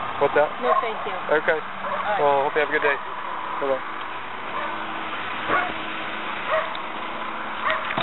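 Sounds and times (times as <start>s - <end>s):
speech: 0.2s - 3.9s
dog barking: 0.6s - 1.0s, 1.8s - 2.2s, 4.5s - 4.8s, 5.5s - 5.8s, 6.5s - 6.8s, 7.6s - 7.9s.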